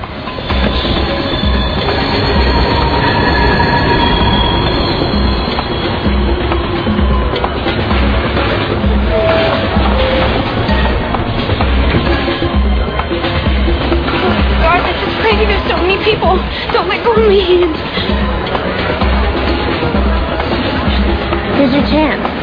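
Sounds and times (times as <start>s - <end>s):
clattering train wheels: 0.0s - 22.4s
train rumbling along rails: 0.0s - 22.4s
thin metallic squeal: 0.3s - 7.8s.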